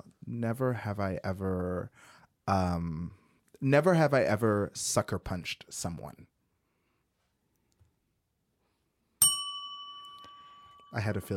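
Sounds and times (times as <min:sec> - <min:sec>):
speech: 0:00.3 - 0:06.3, 0:10.9 - 0:11.3
bright bell ding: 0:09.2 - 0:11.3.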